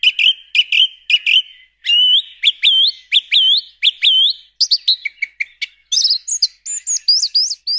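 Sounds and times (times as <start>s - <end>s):
song thrush singing: 0.0s - 7.7s.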